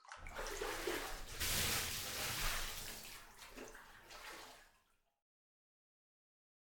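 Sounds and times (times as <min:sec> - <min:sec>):
water pouring and splashing while washing a body: 0:00.0 - 0:05.0.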